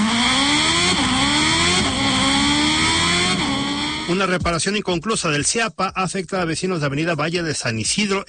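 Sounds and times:
motorcycle engine revving with gear shifts: 0.0 - 4.4
speech: 4.1 - 8.2.

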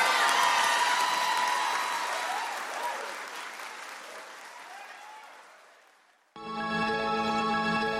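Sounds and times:
audience clapping and cheering: 0.0 - 6.4
music: 6.4 - 7.9.

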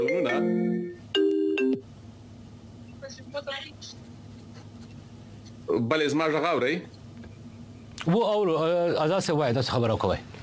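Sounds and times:
telephone ringing with an incoming call: 0.0 - 1.8
speech: 5.7 - 7.0, 8.0 - 10.3.

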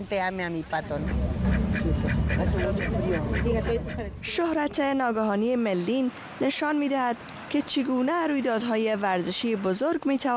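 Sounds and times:
speech: 0.0 - 10.3
duck quacking: 1.0 - 4.1.

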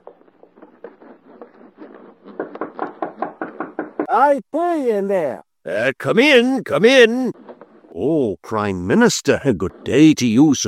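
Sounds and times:
knocking on a door: 2.4 - 4.1
speech: 4.1 - 7.4, 8.0 - 10.6.

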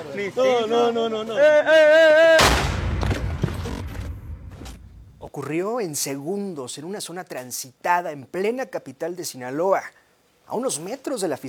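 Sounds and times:
speech: 0.1 - 2.6, 5.4 - 11.4
loud gunshot in a street shooting: 2.4 - 5.2.

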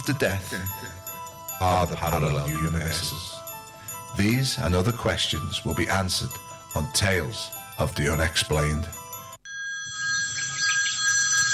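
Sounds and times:
speech: 0.0 - 1.0, 1.6 - 3.4, 4.1 - 9.0
telephone ringing with a high electronic trill: 9.2 - 11.5.

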